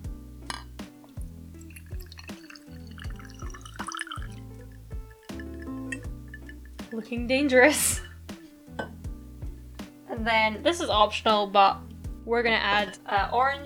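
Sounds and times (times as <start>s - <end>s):
music: 0.0s - 13.6s
faint drips: 0.4s - 9.0s
cocktail trickling into a glass: 1.6s - 7.2s, 7.9s - 8.5s
light clink of glass: 1.7s - 7.1s, 7.8s - 9.0s
speech: 6.9s - 8.0s, 10.2s - 13.6s.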